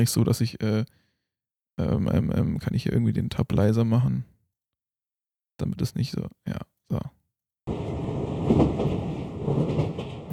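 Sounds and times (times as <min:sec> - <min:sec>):
speech: 0:00.0 - 0:01.0, 0:01.8 - 0:04.3, 0:05.6 - 0:09.8
train rumbling on rails: 0:07.7 - 0:10.3.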